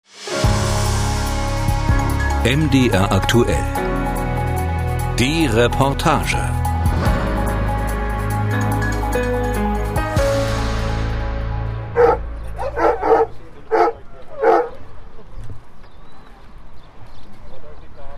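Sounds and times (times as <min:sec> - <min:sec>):
music: 0:00.0 - 0:13.5
speech: 0:02.4 - 0:03.8, 0:05.2 - 0:06.6
tracking dog barking in Nordhausen, Thuringia: 0:12.0 - 0:14.8.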